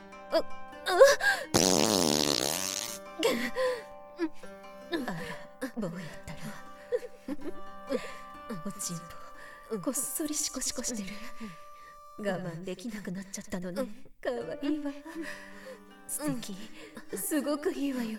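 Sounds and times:
speech: 0.3 - 1.8, 3.2 - 6.3, 8.8 - 15.5, 16.1 - 18.1
woman's loud drawn-out fart: 1.5 - 3.1.

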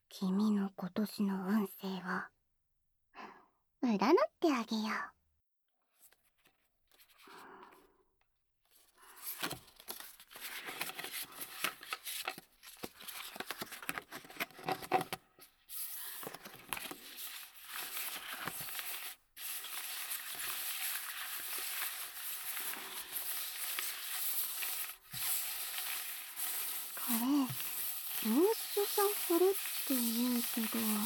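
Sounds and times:
speech: 0.2 - 2.4, 3.8 - 5.2, 29.0 - 31.0
playing cards shuffled and laid out: 9.3 - 31.0.

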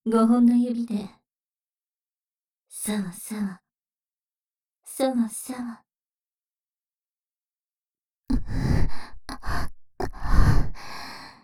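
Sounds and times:
speech: 0.0 - 1.2, 2.8 - 3.6, 5.0 - 5.8
close breathy exhalations into the microphone: 8.3 - 11.4.

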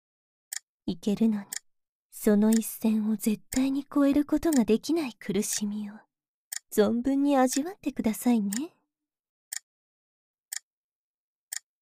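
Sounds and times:
clock ticking: 0.5 - 1.6, 2.3 - 5.8, 6.5 - 8.7
speech: 0.9 - 1.6, 2.2 - 6.1, 6.7 - 8.8.

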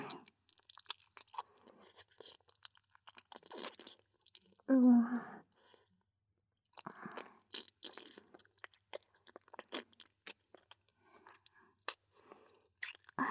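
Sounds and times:
wet chewing of food: 0.1 - 4.6, 6.7 - 12.1, 12.8 - 13.1.

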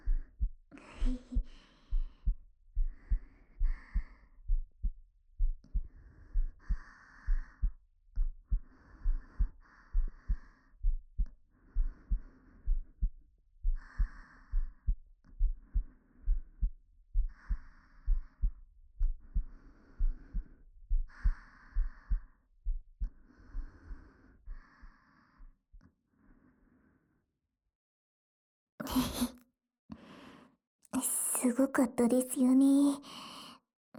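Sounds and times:
rapid heartbeat heard close to chest: 0.0 - 25.0
speech: 1.0 - 1.3, 31.5 - 33.3.

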